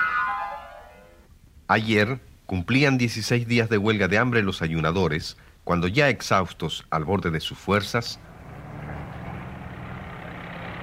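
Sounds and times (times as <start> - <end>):
speech: 1.7 - 8.3
heavy engine rumble from trucks, tractors and excavators arriving with huge pipes: 8.2 - 10.8.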